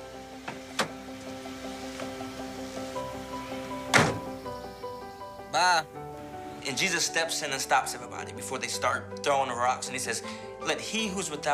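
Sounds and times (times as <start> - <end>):
door opening: 0.4 - 2.3, 3.0 - 4.6
speech: 5.6 - 6.0, 6.7 - 11.5.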